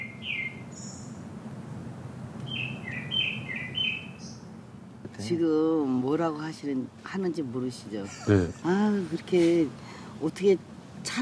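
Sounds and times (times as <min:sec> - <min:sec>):
birds chirping and singing: 0:00.0 - 0:01.2, 0:02.5 - 0:04.5
steady low outdoor hum: 0:00.0 - 0:11.2
speech: 0:05.2 - 0:11.2.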